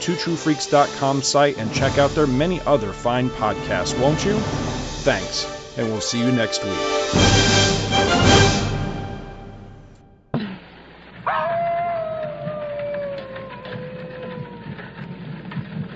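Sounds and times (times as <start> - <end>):
speech: 0.0 - 7.4
rough rumbling noise: 0.9 - 10.1
lone wolf howling: 11.2 - 15.4.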